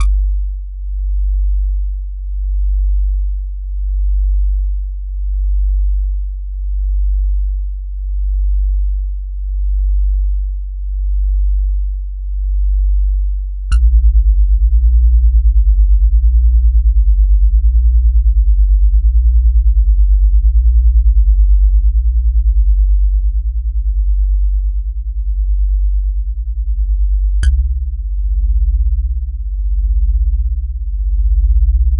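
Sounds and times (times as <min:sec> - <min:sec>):
slow bassy bass: 0:00.0 - 0:31.9.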